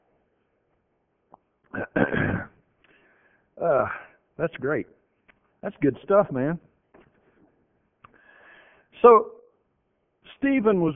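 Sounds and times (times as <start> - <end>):
speech: 1.7 - 2.5, 4.4 - 5.0, 5.6 - 6.7, 9.0 - 9.3, 10.4 - 10.9
person clearing throat: 1.7 - 2.6
raspy hacking cough: 1.7 - 2.6.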